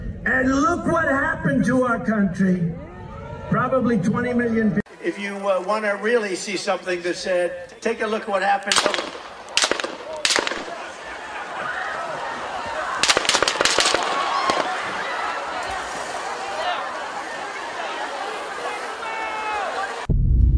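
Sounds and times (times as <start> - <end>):
speech: 0.3 - 2.9, 3.5 - 9.2
crowd hubbub at a political rally: 2.7 - 4.2, 4.9 - 20.1
gunshots fired into the crowd at a political rally: 8.7 - 11.6, 12.2 - 15.8
laughter: 10.0 - 20.1.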